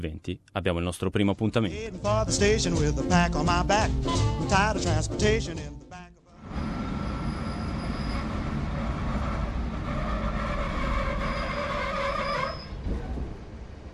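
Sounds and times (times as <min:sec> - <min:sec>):
speech: 0:00.0 - 0:06.0
train rolling along rails with high whining wheel tones: 0:06.4 - 0:13.9.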